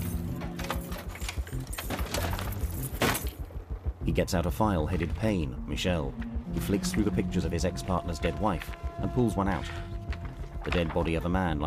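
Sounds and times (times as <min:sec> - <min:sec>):
keys jangling as a desk is unlocked: 0:00.0 - 0:03.4
speech: 0:04.2 - 0:09.9, 0:10.6 - 0:11.6.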